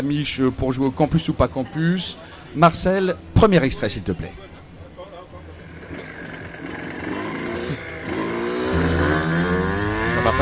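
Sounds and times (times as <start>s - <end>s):
speech: 0.0s - 4.5s
loud motorcycle engine revving: 5.6s - 10.4s.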